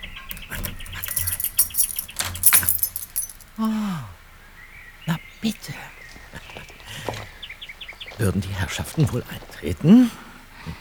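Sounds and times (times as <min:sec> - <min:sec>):
keys jangling: 0:00.4 - 0:03.5
speech: 0:03.6 - 0:04.1, 0:05.4 - 0:05.9, 0:08.2 - 0:10.8.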